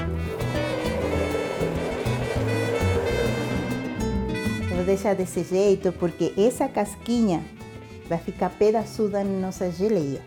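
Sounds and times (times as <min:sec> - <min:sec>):
blender blending grapes with sugar: 0:00.0 - 0:04.6
speech: 0:04.8 - 0:10.2.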